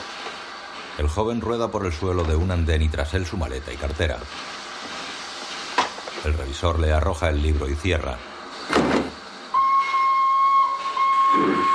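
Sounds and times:
speech: 1.0 - 4.6, 6.2 - 8.9
steam train whistle as the train pulls out from a station platform: 9.5 - 11.7.

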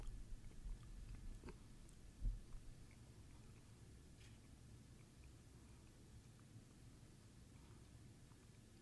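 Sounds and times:
faint wet mouth noises: 0.0 - 6.9
chewing on a piece of thread: 0.0 - 8.8.

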